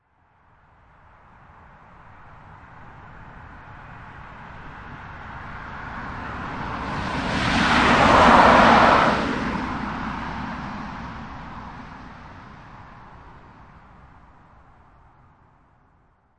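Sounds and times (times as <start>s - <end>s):
car passing by and away on dry road at 45mph: 2.5s - 14.7s.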